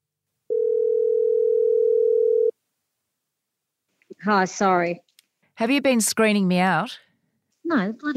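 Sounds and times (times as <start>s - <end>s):
steady telephone dial tone: 0.5s - 2.5s
speech: 4.2s - 7.0s, 7.6s - 8.1s.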